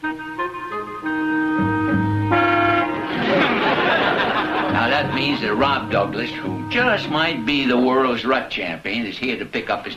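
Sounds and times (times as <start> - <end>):
noisy hissing sound: 0.0 - 9.9
car horn honking in loud sustained blasts: 1.8 - 3.2, 4.4 - 7.9
laughter: 2.9 - 5.9
speech: 5.2 - 9.9.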